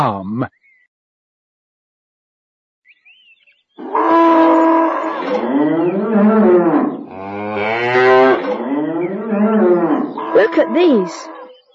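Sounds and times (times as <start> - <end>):
speech: 0.0 - 0.6, 5.2 - 7.0, 10.5 - 11.4
cows mooing: 3.8 - 11.5.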